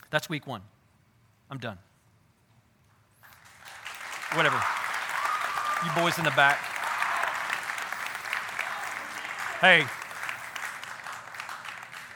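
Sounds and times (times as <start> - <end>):
speech: 0.1 - 0.7, 1.5 - 1.9, 4.3 - 4.8, 5.8 - 6.7, 9.6 - 10.0
audience clapping: 3.3 - 12.1.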